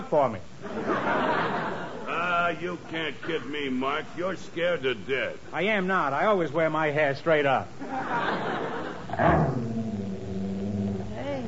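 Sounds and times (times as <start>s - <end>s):
speech: 0.1s - 1.4s, 2.5s - 8.5s
laughter: 0.6s - 4.0s, 7.8s - 9.2s
dog growling and snarling: 9.1s - 11.4s.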